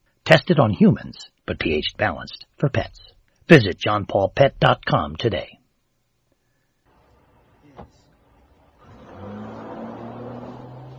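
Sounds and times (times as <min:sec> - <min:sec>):
speech: 0:00.3 - 0:05.6
car engine revving to a steady hum while being driven: 0:08.3 - 0:10.9.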